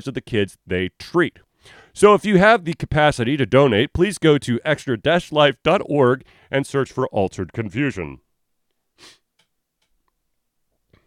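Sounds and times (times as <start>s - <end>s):
speech: 0.0s - 8.2s, 9.0s - 9.2s
person sniffling: 1.6s - 2.0s, 9.0s - 9.3s.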